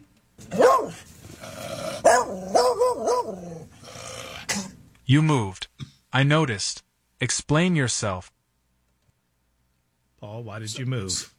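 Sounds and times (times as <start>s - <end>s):
dog barking: 0.4s - 1.1s, 2.0s - 3.6s
speech: 5.1s - 8.4s, 10.2s - 11.3s.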